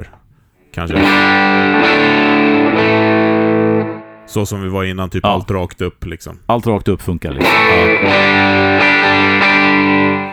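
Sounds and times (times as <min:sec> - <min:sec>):
speech: 0:00.8 - 0:02.2, 0:04.3 - 0:10.3
electric guitar chord through a germanium overdrive circuit: 0:01.0 - 0:04.3, 0:07.4 - 0:10.3.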